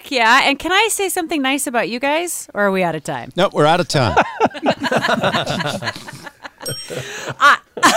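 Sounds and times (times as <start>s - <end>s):
speech: 0.1s - 7.9s
people laughing and chuckling: 4.0s - 7.9s
small bell ringing: 6.6s - 7.1s.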